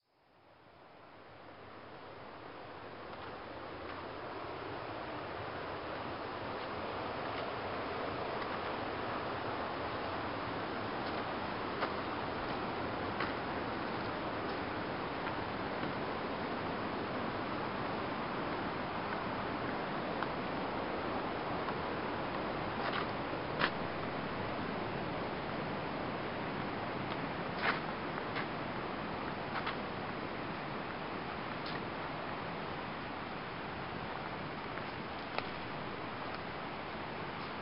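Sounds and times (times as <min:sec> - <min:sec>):
small mountain waterfall roaring: 0:01.6 - 0:37.5.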